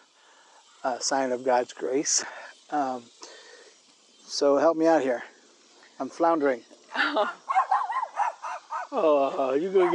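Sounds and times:
speech: 0.8 - 3.2, 4.3 - 5.3, 6.0 - 7.4, 8.9 - 9.9
small dog yappy high-pitched barking: 7.5 - 9.0, 9.7 - 9.9.

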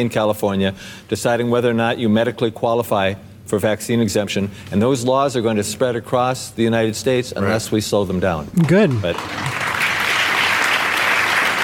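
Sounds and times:
speech: 0.0 - 9.7
audience applause: 8.6 - 11.6.

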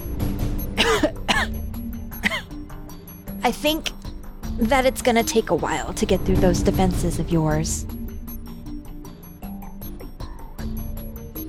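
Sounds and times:
person clearing throat: 0.8 - 1.6, 2.2 - 2.6
rough hoarse coughs: 0.8 - 1.6, 2.2 - 2.6
speech: 3.4 - 4.0, 4.6 - 8.0.

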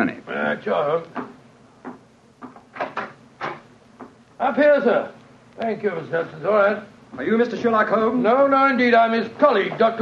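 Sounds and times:
speech: 0.0 - 1.3, 4.4 - 10.0
front door being opened with wooden clunks and latch rattles: 2.7 - 3.7.

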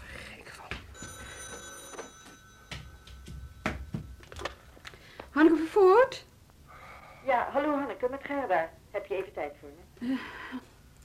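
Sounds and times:
telephone bell ringing: 0.9 - 5.1
speech: 5.4 - 6.3, 7.3 - 10.6.

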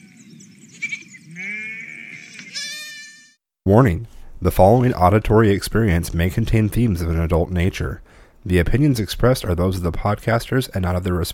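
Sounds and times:
sheep bleating: 1.3 - 3.2
speech: 3.7 - 11.3.

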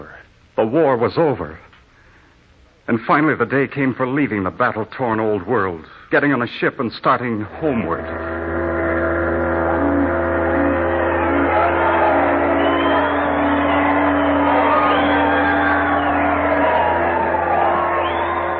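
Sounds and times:
speech: 0.0 - 1.7, 2.9 - 8.5
low steady hum: 0.0 - 18.5
large crowd shouting and cheering: 7.6 - 18.5.

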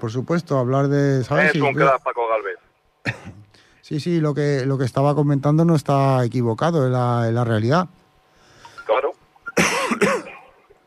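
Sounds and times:
speech: 0.0 - 8.0
person coughing in a short fit: 3.0 - 3.5, 9.6 - 10.5.

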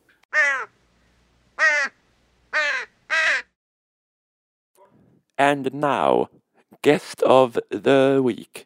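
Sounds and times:
crow cawing: 0.3 - 0.8, 1.6 - 3.6
speech: 5.4 - 8.6.

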